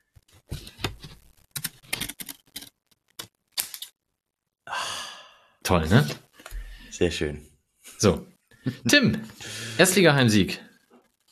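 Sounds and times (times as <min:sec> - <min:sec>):
papery rustle of lottery tickets: 0:00.3 - 0:03.9
speech: 0:05.7 - 0:06.2, 0:07.0 - 0:10.7.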